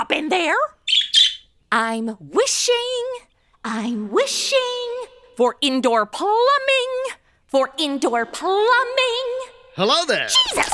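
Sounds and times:
speech: 0:00.1 - 0:00.8, 0:01.7 - 0:09.1, 0:09.8 - 0:10.7
bird chirping by steps in a walled courtyard with a wishing well: 0:00.7 - 0:01.6.

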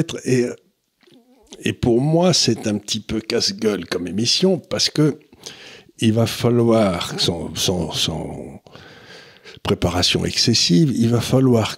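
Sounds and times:
speech: 0:00.0 - 0:00.6, 0:01.5 - 0:08.9, 0:09.5 - 0:11.7
dog whining in an office: 0:01.1 - 0:01.6.

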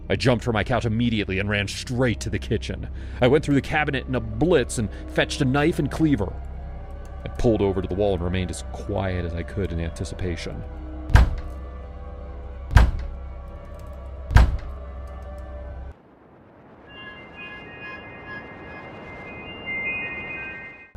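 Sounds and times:
speech: 0:00.1 - 0:06.5, 0:07.4 - 0:11.3
heavy banging by hands on a house door: 0:11.1 - 0:11.5, 0:12.7 - 0:13.1, 0:14.3 - 0:14.7
faint high ringing tones: 0:16.0 - 0:20.9.

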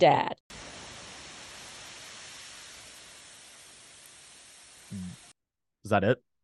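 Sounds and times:
speech: 0:00.0 - 0:00.4, 0:05.9 - 0:06.3
steady rain from a passing storm: 0:00.5 - 0:05.3.

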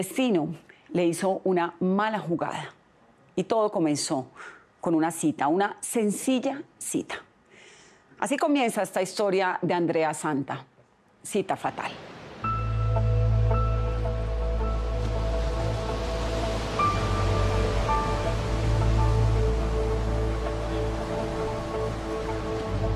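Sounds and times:
speech: 0:00.0 - 0:02.8, 0:03.4 - 0:07.3, 0:08.2 - 0:12.1
Caribbean sea waves hitting the beach at Riohacha: 0:11.8 - 0:22.9.

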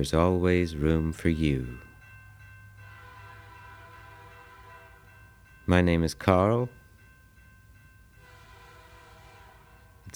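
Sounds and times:
speech: 0:00.0 - 0:01.9, 0:05.7 - 0:06.8
train rolling rumble: 0:00.0 - 0:10.1
train horn chord: 0:02.7 - 0:05.7, 0:08.1 - 0:10.1.

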